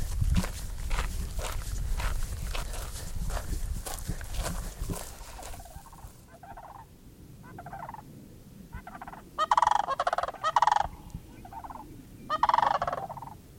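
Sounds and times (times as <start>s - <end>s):
low outdoor rumble: 0.0s - 13.5s
sandhill cranes calling in loud rolling rattling bursts: 4.4s - 8.1s, 8.7s - 13.4s.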